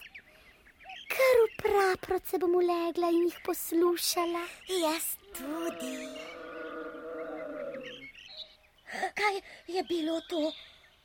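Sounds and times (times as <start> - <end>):
faint bird chirps: 0.0 - 11.0
speech: 1.7 - 6.3, 9.2 - 10.7
wild beast growling: 5.4 - 8.1.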